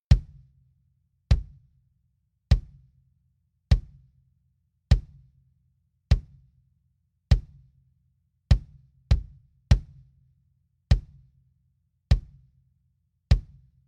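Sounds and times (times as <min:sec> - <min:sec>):
dry kick drum: 0:00.1 - 0:00.5, 0:01.3 - 0:01.7, 0:02.5 - 0:02.9, 0:03.7 - 0:04.1, 0:04.9 - 0:05.3, 0:06.1 - 0:06.5, 0:07.3 - 0:07.7, 0:08.5 - 0:10.1, 0:10.9 - 0:11.3, 0:12.1 - 0:12.5, 0:13.3 - 0:13.7.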